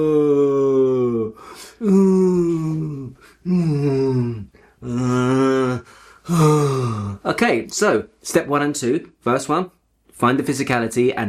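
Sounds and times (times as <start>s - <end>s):
speech: 0.0s - 0.2s, 7.4s - 11.2s
person imitating a banana with exaggerated groaning sighs: 0.0s - 7.2s
noisy inhales: 1.4s - 1.8s, 5.8s - 7.2s.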